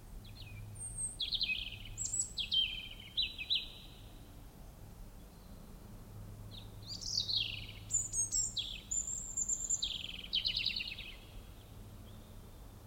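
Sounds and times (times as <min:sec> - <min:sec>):
European robin singing, Erithacus rubecula: 0:00.3 - 0:04.2, 0:06.5 - 0:12.7.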